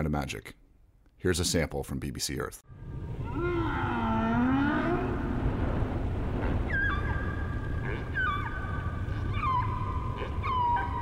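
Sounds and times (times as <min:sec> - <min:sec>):
speech: 0:00.0 - 0:00.6, 0:01.2 - 0:02.8
humpback whale song: 0:03.1 - 0:11.0.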